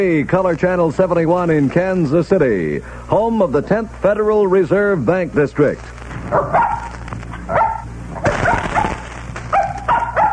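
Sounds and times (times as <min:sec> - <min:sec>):
speech: 0:00.0 - 0:06.8
low steady hum: 0:00.0 - 0:10.3
dog barking: 0:06.3 - 0:10.3.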